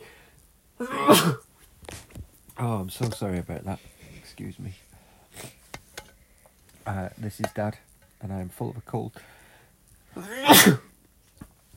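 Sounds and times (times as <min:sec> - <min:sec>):
loud sneeze: 0:00.8 - 0:01.4, 0:10.2 - 0:10.9
speech: 0:00.8 - 0:01.4, 0:02.6 - 0:04.8, 0:06.9 - 0:09.4, 0:10.2 - 0:10.9.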